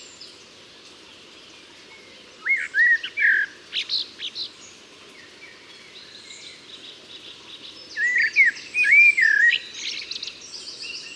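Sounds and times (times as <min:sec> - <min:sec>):
steady background hiss: 0:00.0 - 0:11.1
common blackbird Turdus merula singing fluted and twittering notes: 0:02.4 - 0:04.5, 0:07.7 - 0:11.1.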